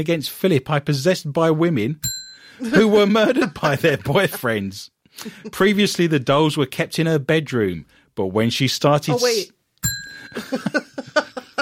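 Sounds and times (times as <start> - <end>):
speech: 0.0 - 11.3
bell ringing: 2.0 - 3.9, 9.8 - 11.2
laughter: 2.6 - 5.9, 10.3 - 11.6
short voiced bursts: 9.1 - 9.5.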